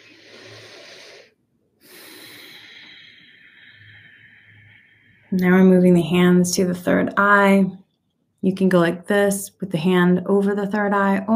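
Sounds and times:
deep breath during a guided meditation: 0:00.0 - 0:05.3
speech: 0:05.3 - 0:07.8, 0:08.4 - 0:11.3.

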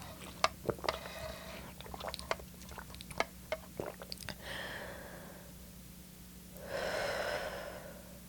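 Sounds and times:
gulping and swallowing water while drinking: 0:00.0 - 0:04.4
steady low hum: 0:00.0 - 0:08.2
long breathy deep breaths: 0:04.4 - 0:05.6, 0:06.6 - 0:08.2.

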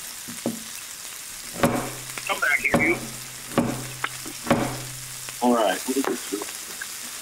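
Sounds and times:
onion frying and splattering in a small personal electric frying pan: 0:00.0 - 0:07.2
stirring knocks in a frying pan: 0:01.4 - 0:05.4.

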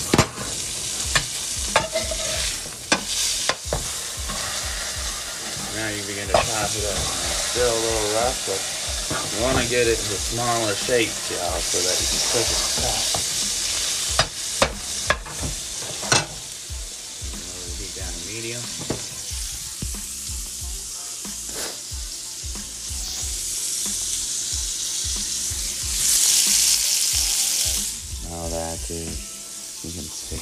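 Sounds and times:
utensil clinking and scraping while stirring chorizo: 0:00.0 - 0:14.3
chorizo sizzling in a frying pan: 0:00.0 - 0:30.4
speech: 0:05.8 - 0:08.7, 0:09.4 - 0:13.2, 0:18.4 - 0:19.1.

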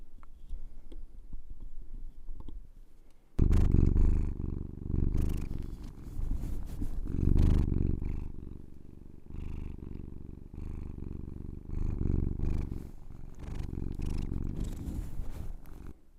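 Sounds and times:
cat purring on a person's lap: 0:03.4 - 0:16.0
cat rubbing its face against the microphone: 0:05.0 - 0:08.4, 0:11.8 - 0:16.0.

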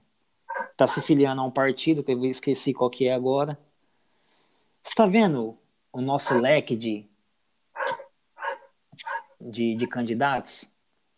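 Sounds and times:
dog barking: 0:00.5 - 0:01.1, 0:06.2 - 0:06.5, 0:07.8 - 0:09.9
speech: 0:00.8 - 0:03.7, 0:04.9 - 0:07.1, 0:09.4 - 0:10.7.

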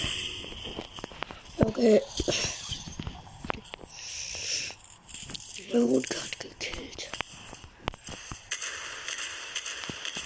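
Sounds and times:
steady background of game noise: 0:00.0 - 0:10.2
speech: 0:01.8 - 0:02.5
rockets being fired in a video game: 0:08.0 - 0:10.2.

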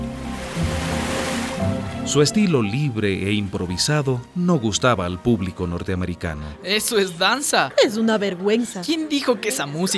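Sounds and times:
ocean waves breaking on shore: 0:00.0 - 0:02.1
speech: 0:02.1 - 0:09.9.

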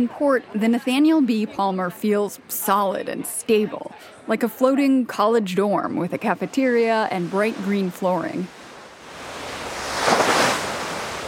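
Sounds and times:
speech: 0:00.0 - 0:08.6
open ocean swell surging: 0:06.5 - 0:11.2
windy hiss: 0:08.5 - 0:11.2.

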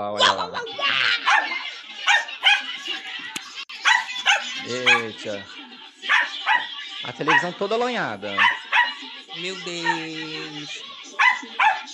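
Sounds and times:
speech: 0:00.0 - 0:00.5, 0:04.7 - 0:05.6, 0:07.0 - 0:08.6, 0:09.4 - 0:10.9
laughter: 0:00.0 - 0:07.4
small dog barking and yipping: 0:01.2 - 0:02.7, 0:03.8 - 0:05.2, 0:06.0 - 0:06.7, 0:07.3 - 0:07.6, 0:08.3 - 0:09.0, 0:11.2 - 0:11.9.

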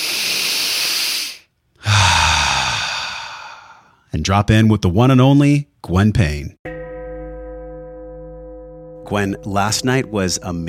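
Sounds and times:
deep breath in and out: 0:00.0 - 0:04.1
speech: 0:04.1 - 0:06.8, 0:09.1 - 0:10.6.

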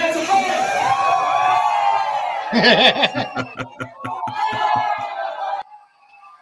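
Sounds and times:
lively crowd cheering and shouting: 0:00.0 - 0:06.3
speech: 0:02.5 - 0:04.0
laughter: 0:02.5 - 0:05.6
rapid rhythmic clapping: 0:03.1 - 0:05.4.

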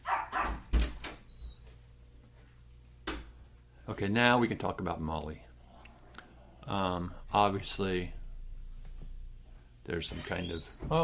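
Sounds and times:
female pet dog barking: 0:00.0 - 0:00.7
faint hum: 0:00.0 - 0:11.0
speech: 0:03.9 - 0:05.5, 0:06.7 - 0:08.2, 0:09.8 - 0:11.0.

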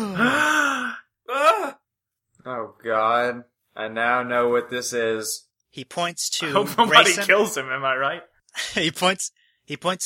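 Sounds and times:
single voice mimicking a crowd gasping: 0:00.0 - 0:01.8
speech: 0:02.8 - 0:10.0.

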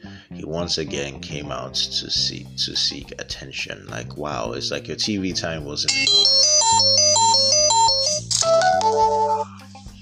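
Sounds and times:
speech: 0:00.4 - 0:07.5, 0:08.8 - 0:09.6
phone ringtone with bright electronic melody: 0:05.9 - 0:09.5.

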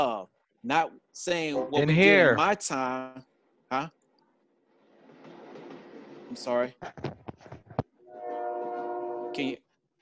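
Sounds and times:
speech: 0:00.0 - 0:04.0, 0:06.3 - 0:07.2, 0:09.4 - 0:09.6
short bursts of voice: 0:01.4 - 0:02.6
loud sustained train horn blast: 0:08.1 - 0:09.6.

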